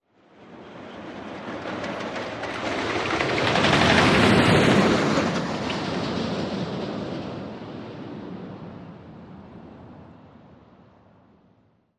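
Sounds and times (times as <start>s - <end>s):
fast roller coaster: 0.3s - 8.8s.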